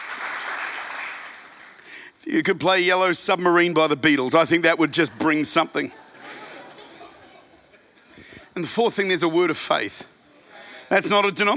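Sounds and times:
audience clapping hands: 0.0 - 1.9
speech: 2.2 - 6.0, 8.6 - 10.1, 10.9 - 11.5
laughter: 4.4 - 8.8.

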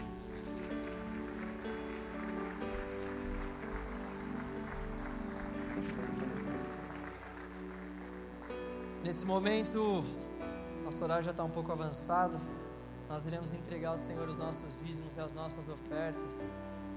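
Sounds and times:
audience applauding: 0.0 - 10.1
speech: 9.0 - 10.2, 10.9 - 16.7.

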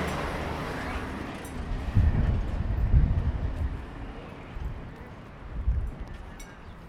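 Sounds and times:
train rumbling past in the Mojave Desert: 0.0 - 4.8
windy outdoor noise: 0.0 - 6.8.

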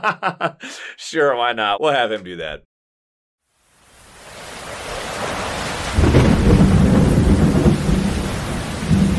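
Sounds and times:
speech: 0.0 - 2.7
thunder rumbling: 5.1 - 9.1.

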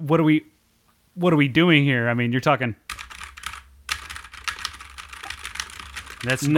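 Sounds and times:
speech: 0.0 - 0.5, 1.2 - 2.8, 6.2 - 6.5
typing on a mechanical keyboard: 2.9 - 6.5.

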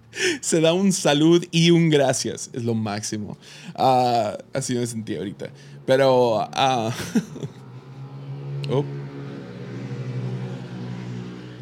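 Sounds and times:
speech: 0.2 - 7.6, 8.7 - 9.0
motorcycle engine passing by outside: 4.9 - 11.5
laughter: 6.7 - 7.6.

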